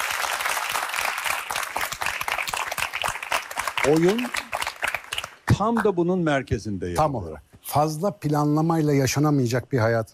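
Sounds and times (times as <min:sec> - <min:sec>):
audience applause: 0:00.0 - 0:05.5
speech: 0:03.8 - 0:04.4, 0:05.6 - 0:10.1.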